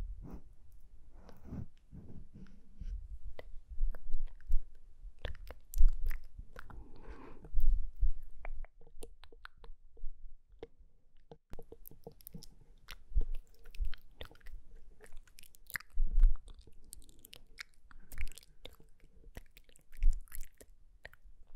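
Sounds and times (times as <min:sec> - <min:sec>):
soft mouth sounds: 0:00.2 - 0:21.5
breathing: 0:01.1 - 0:03.0, 0:06.6 - 0:07.8.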